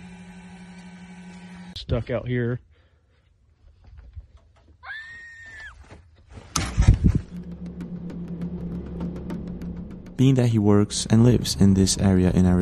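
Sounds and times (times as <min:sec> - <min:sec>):
speech: 0:01.8 - 0:02.7, 0:10.2 - 0:12.6
girl screaming on a road in Arizona in the dark: 0:04.8 - 0:05.8
rumbling noise: 0:06.6 - 0:12.6.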